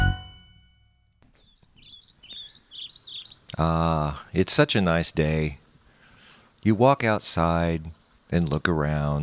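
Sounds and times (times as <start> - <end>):
short chime: 0.0 - 1.2
birds chirping outdoors in high-pitched notes: 1.2 - 9.2
speech: 3.6 - 5.6, 6.6 - 9.2.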